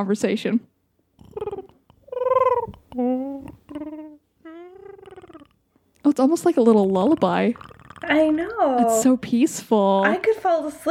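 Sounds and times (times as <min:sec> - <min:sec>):
speech: 0:00.0 - 0:00.7, 0:03.0 - 0:03.6, 0:06.0 - 0:10.8
soft creature growl with purring rattling texture: 0:01.2 - 0:05.6, 0:06.6 - 0:09.0.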